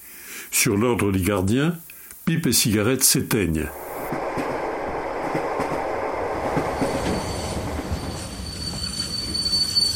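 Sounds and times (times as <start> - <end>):
speech: 0.6 - 4.2
train carrying prisoners pulling into a station, wagons rattling over rails: 3.5 - 9.9
train wheels squealing: 6.4 - 9.9.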